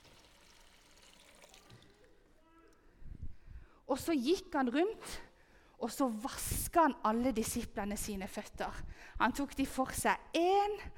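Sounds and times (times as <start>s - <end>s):
water poured into a washbasin: 0.0s - 2.1s
speech: 3.9s - 10.9s.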